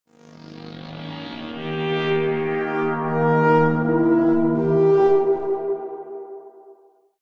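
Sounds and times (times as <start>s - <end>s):
weird synthy sci fi space synth melody accent: 2.7s - 6.8s.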